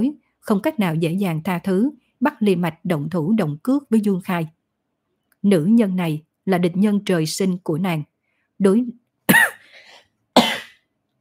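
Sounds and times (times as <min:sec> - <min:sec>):
speech: 0:00.0 - 0:04.6, 0:05.4 - 0:09.0
person coughing with a lingering cough after Covid: 0:09.3 - 0:10.9.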